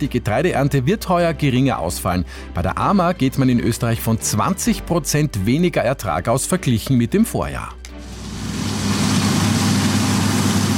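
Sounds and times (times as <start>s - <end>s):
speech: 0.0s - 7.8s
heavy farm machinery engines droning: 8.0s - 10.7s.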